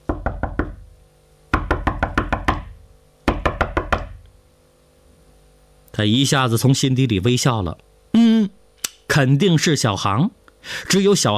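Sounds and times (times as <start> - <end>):
knocking on a door: 0.1 - 0.9, 1.5 - 4.2
speech: 6.0 - 7.9, 9.2 - 11.3.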